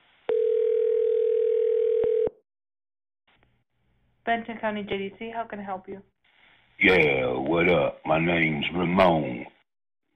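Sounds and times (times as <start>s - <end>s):
telephone tone during call transfer: 0.3s - 2.4s
speech: 4.3s - 6.1s, 6.8s - 9.5s.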